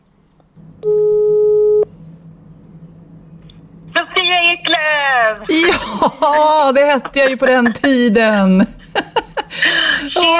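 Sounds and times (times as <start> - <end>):
low hum: 0.0 - 10.3
telephone ringing tone of an outgoing phone call: 0.8 - 1.9
speech: 4.7 - 9.2
laughter: 5.5 - 10.3.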